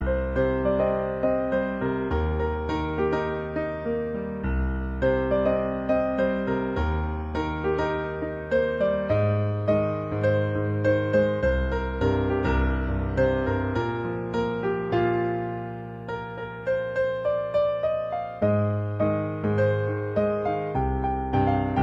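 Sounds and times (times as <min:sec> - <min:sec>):
jazz piano: 0:00.0 - 0:21.8.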